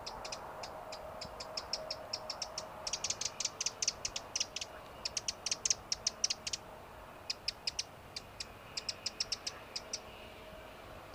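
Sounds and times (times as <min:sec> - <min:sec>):
Eurasian wren Troglodytes troglodytes giving sharp high ticks: 0:00.0 - 0:10.4
faint background hum: 0:00.0 - 0:11.1.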